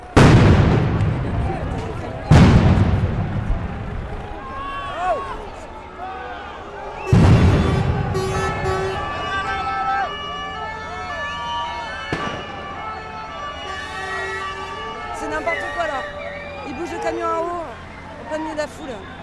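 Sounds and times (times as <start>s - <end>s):
tear gas grenade blasts outdoors: 0.0s - 4.8s, 7.0s - 9.6s, 12.1s - 13.0s
crowd shouting: 0.0s - 19.2s
crowd whistles: 6.3s - 10.2s, 11.1s - 14.8s, 15.5s - 17.0s, 17.7s - 19.2s.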